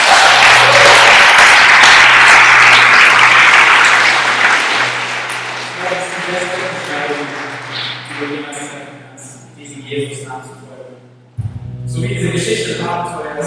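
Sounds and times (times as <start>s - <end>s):
large crowd applauding: 0.0s - 8.9s
sustained tones: 4.2s - 13.4s.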